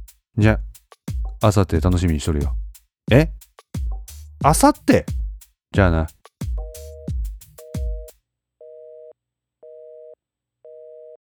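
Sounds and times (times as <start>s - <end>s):
speech: 0.4s - 0.7s, 1.4s - 3.4s, 4.4s - 5.2s, 5.8s - 6.2s
telephone busy tone: 8.6s - 11.2s.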